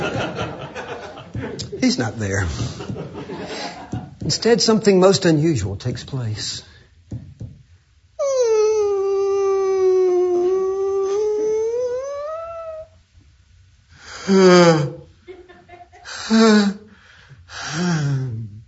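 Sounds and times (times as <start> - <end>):
laughter: 0.0 - 4.2, 15.3 - 16.2
speech: 1.8 - 2.8, 4.3 - 6.7, 14.3 - 14.8
loud drawn-out yawn from someone in a casket: 8.2 - 12.9, 14.0 - 15.1, 17.5 - 18.6.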